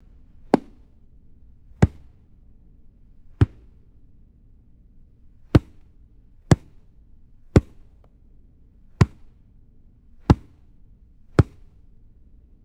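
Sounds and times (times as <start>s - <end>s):
dull thuds of a bouncing tennis ball: 0.4s - 0.9s, 1.7s - 2.2s, 3.4s - 3.8s, 5.5s - 5.9s, 6.5s - 6.8s, 7.6s - 7.9s, 9.0s - 9.4s, 10.3s - 10.6s, 11.4s - 11.7s.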